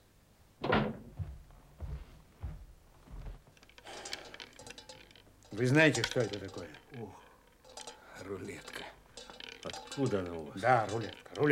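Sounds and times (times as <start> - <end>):
door thudding shut: 0.6 - 1.2
dull uneven thumps: 0.7 - 3.5
shuffling: 1.0 - 11.5
faint rattling clatter: 3.1 - 11.5
speech: 5.6 - 7.3, 8.2 - 9.0, 9.6 - 11.5.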